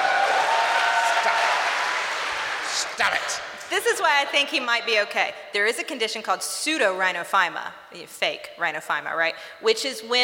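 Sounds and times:
audience applause: 0.0 - 3.3
speech: 3.0 - 10.2.

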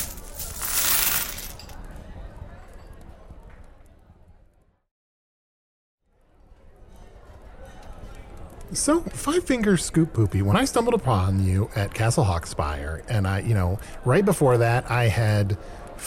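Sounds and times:
coins tossed skittering across a table: 0.0 - 1.8
low noise: 0.0 - 4.8, 6.1 - 16.0
speech: 8.7 - 16.0.

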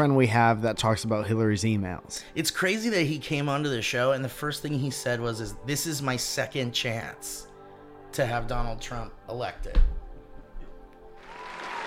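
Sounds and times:
speech: 0.0 - 7.5, 8.1 - 10.0
audience clapping: 11.2 - 11.8.

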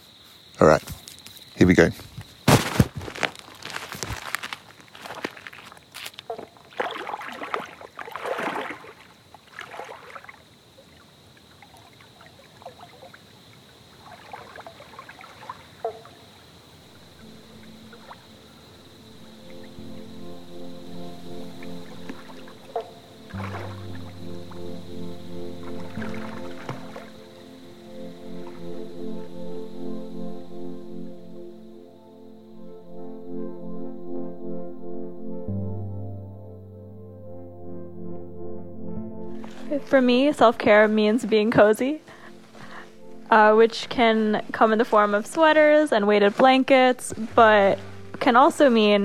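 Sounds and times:
speech: 0.6 - 1.0, 1.6 - 2.1, 39.9 - 42.1, 43.3 - 49.0
person easing into water, splashing and sloshing: 2.5 - 18.5, 21.6 - 27.5, 39.4 - 49.0
low tones: 16.8 - 45.5.

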